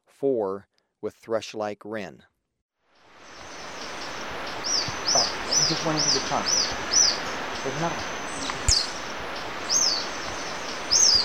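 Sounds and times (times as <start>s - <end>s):
speech: 0.2s - 2.3s, 5.7s - 6.7s, 7.6s - 8.2s
steady hiss: 3.0s - 11.2s
white-fronted tyrannulet giving thin high arched notes in Ecuador: 3.3s - 11.2s.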